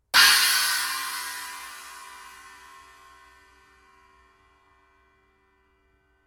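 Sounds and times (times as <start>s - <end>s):
ZBT 16 inch China cymbal: 0.2s - 5.0s.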